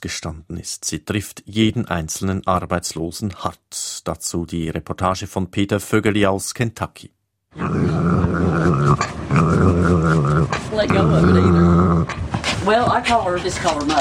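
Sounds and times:
speech: 0.0 - 13.9
small dog growling: 7.5 - 12.7.

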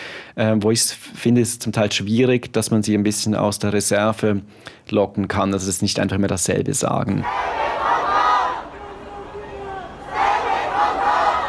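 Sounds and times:
speech: 0.4 - 7.6
protest march crowd chanting slogans: 7.2 - 11.4
murmur of crowd babble at a protest march: 7.3 - 11.4.

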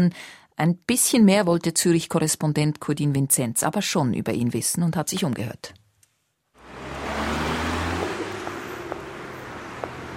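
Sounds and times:
speech: 0.0 - 5.8
rush-hour car traffic rolling along a road: 6.6 - 10.1.

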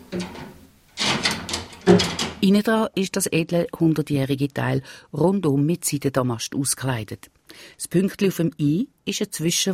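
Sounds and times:
hanger rack pulled out of a 100-year-old wardrobe trunk from Fifth Avenue New York: 0.0 - 2.4
speech: 1.9 - 9.7.

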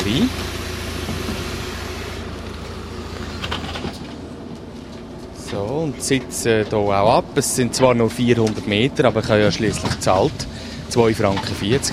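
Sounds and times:
Postauto bus engine rumbling at the Dorf stop in Arni, Switzerland: 0.0 - 11.9
speech: 0.1 - 0.6, 5.5 - 11.9
bus hissing bursts: 10.5 - 10.9.

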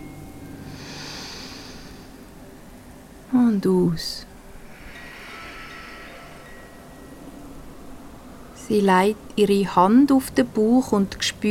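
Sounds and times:
deep slow inhalation: 0.6 - 2.5, 4.4 - 8.2
speech: 3.3 - 4.3, 8.7 - 11.4.

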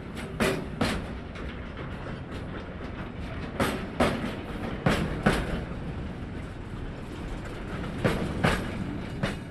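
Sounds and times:
freight train rolling slowly along the tracks: 0.0 - 9.4.

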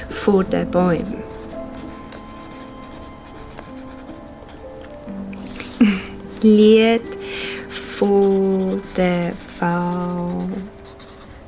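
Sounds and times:
speech: 0.2 - 1.2, 6.4 - 7.1, 8.0 - 10.7
colored pencil scratching on math exercise book paper: 0.9 - 4.6, 7.7 - 11.4.

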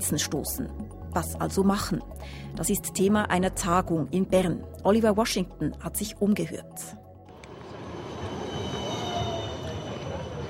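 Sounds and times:
speech: 0.0 - 7.0
tram or light rail vehicle rumbling at a stop: 7.3 - 10.4
faint high metallic squeal from tram wheels: 7.8 - 10.4.

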